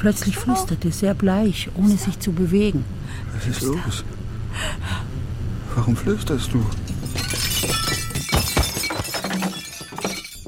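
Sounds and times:
speech: 0.0 - 5.0, 5.8 - 7.2
glass shattering with tinkling debris: 6.8 - 10.4.

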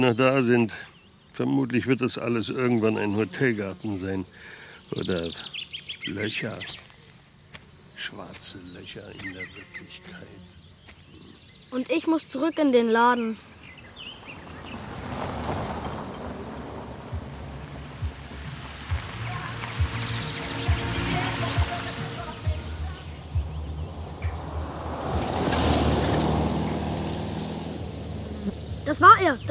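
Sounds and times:
speech: 0.0 - 6.8, 8.0 - 10.4, 11.7 - 13.5
convoy of heavy cars driving past: 13.9 - 29.4.

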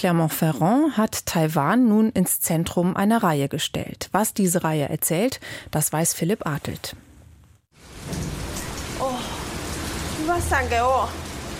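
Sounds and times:
speech: 0.0 - 7.0, 10.3 - 11.3
heavy rain pouring down in a city in Taiwan: 7.7 - 11.5.

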